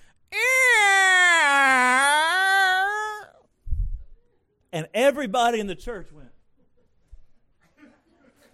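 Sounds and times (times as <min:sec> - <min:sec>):
voice imitating the creaking hinge of a church door: 0:00.4 - 0:03.3
speech: 0:04.8 - 0:06.4.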